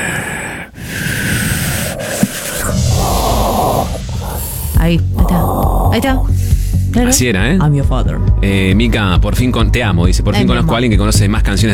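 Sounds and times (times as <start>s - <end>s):
voice imitating the mechanical rasping breathing of a masked film villain: 0.0s - 6.6s
speech: 4.8s - 5.1s, 6.0s - 11.7s.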